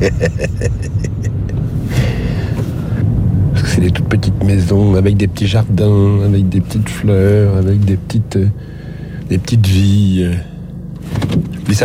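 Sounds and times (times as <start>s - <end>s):
speech: 0.0s - 1.0s, 3.8s - 11.8s
laughter: 0.0s - 1.6s
car engine rumble while driving: 0.0s - 11.8s
road noise: 0.0s - 11.8s.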